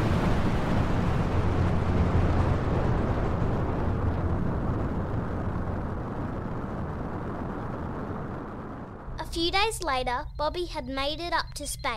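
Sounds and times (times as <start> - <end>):
rocket blasting off: 0.0 - 9.3
speech: 9.4 - 11.9.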